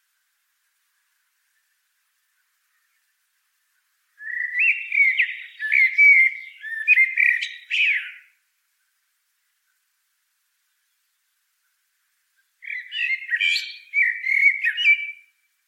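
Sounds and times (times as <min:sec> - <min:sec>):
common blackbird Turdus merula singing mellow fluted whistles: 0:04.2 - 0:08.4, 0:12.4 - 0:15.4.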